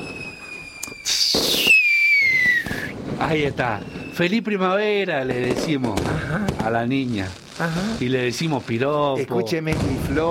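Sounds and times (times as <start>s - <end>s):
shrill downward-gliding whistling tone: 0.0s - 3.0s, 3.6s - 4.4s
firecrackers going off at a spring celebration in Taiwan: 0.0s - 10.2s
speech: 3.2s - 10.2s.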